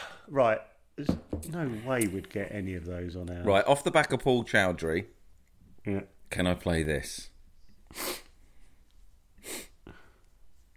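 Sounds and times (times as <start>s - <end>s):
speech: 0.3s - 5.2s, 5.8s - 7.3s, 7.9s - 8.2s
person sniffing sharply: 7.8s - 8.7s, 9.4s - 10.3s.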